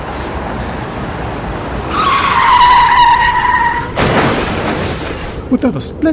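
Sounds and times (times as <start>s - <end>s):
car tires screeching as a car skids on the road: 0.6s - 5.5s
speech: 5.5s - 6.1s.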